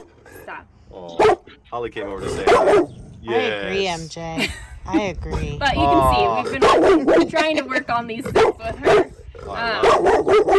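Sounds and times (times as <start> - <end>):
speech: 0.5 - 10.5
dog barking harshly: 1.1 - 1.6, 2.3 - 3.0, 6.5 - 7.3, 8.2 - 10.5.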